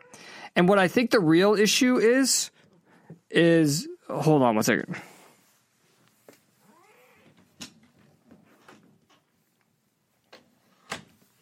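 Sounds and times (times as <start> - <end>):
speech: 0.6 - 2.6, 3.3 - 5.1
cat meowing: 6.6 - 7.3.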